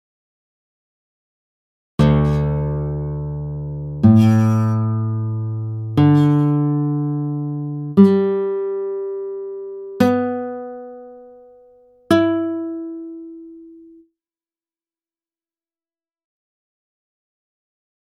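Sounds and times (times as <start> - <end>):
guitar in drop D tuning: 2.0 - 14.0.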